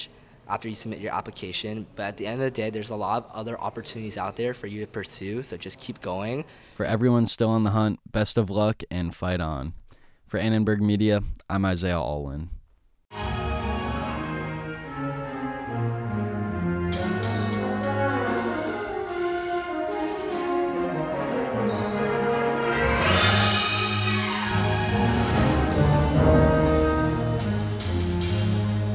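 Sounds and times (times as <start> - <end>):
speech: 0.0 - 13.2
university school of music symphony orchestra rehearsing for a new-music concert: 13.1 - 28.9.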